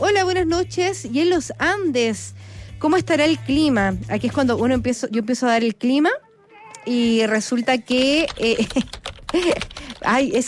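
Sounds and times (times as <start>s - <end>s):
speech: 0.0s - 6.2s, 6.8s - 10.4s
typing on a computer keyboard: 7.8s - 10.4s.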